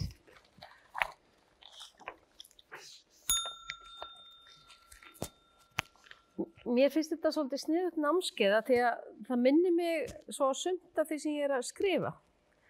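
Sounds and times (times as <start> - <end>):
bell ringing: 3.3 - 5.8
speech: 6.7 - 12.3.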